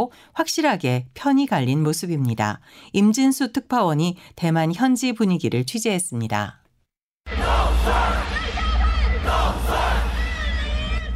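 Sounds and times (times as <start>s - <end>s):
speech: 0.0s - 6.6s
large crowd of supporters cheering at a presidential election campaign rally in Taipei: 7.3s - 11.1s.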